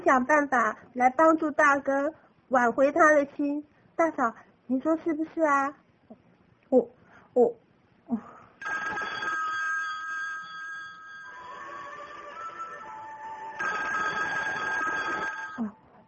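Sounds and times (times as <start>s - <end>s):
speech: 0.0s - 5.8s, 6.7s - 9.0s
telephone bell ringing: 8.6s - 15.8s.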